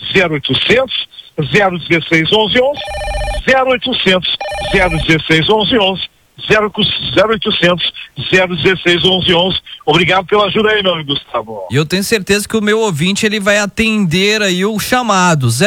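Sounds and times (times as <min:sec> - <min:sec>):
speech: 0:00.1 - 0:15.6
telephone ringing on a call-in line: 0:02.7 - 0:03.8, 0:04.4 - 0:05.2.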